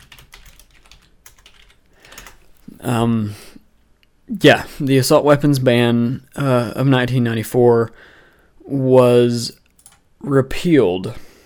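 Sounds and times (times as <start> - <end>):
typing on a computer keyboard: 0.0 - 2.4, 9.6 - 10.0
speech: 2.8 - 3.4, 4.3 - 8.1, 8.7 - 9.6, 10.2 - 11.3.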